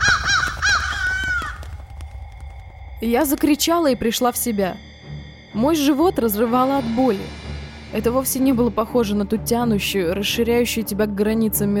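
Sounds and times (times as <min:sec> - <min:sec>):
harsh crow caws: 0:00.0 - 0:02.4
speech: 0:03.0 - 0:04.9, 0:05.5 - 0:11.7.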